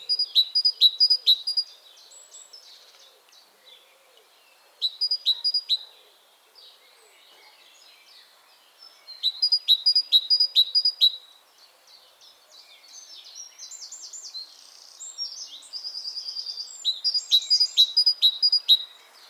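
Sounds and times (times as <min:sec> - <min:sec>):
Parus major great tit giving sharp metallic notes: 0:00.0 - 0:01.8, 0:04.8 - 0:06.0, 0:09.2 - 0:11.3, 0:14.9 - 0:19.2
quiet twittering: 0:00.0 - 0:19.2.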